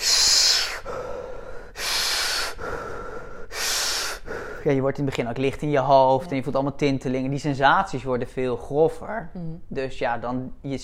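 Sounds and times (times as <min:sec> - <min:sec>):
seated person doing deep deliberate breathing exercise: 0:00.0 - 0:04.8
speech: 0:04.6 - 0:10.8.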